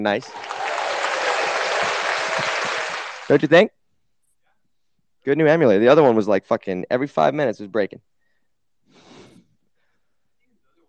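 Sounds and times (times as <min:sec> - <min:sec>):
speech: 0:00.0 - 0:00.6, 0:03.3 - 0:03.8, 0:05.2 - 0:08.1
applause sound effect from soundboard: 0:00.1 - 0:03.6.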